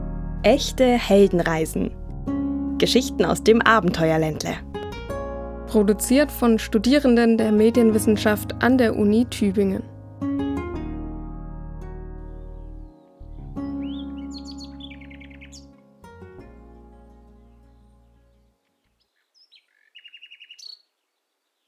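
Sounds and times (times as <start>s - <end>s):
speech: 0.4s - 2.0s, 2.8s - 4.6s, 5.7s - 9.8s
blackbird singing: 12.3s - 15.8s, 17.5s - 21.6s.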